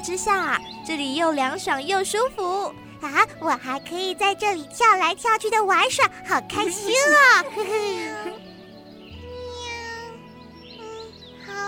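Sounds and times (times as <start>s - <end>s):
speech: 0.0s - 8.3s
laughter: 6.6s - 8.4s
weak cat meowing: 9.4s - 10.2s.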